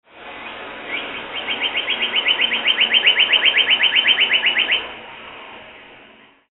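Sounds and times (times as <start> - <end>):
birdcall: 0.4 - 4.9.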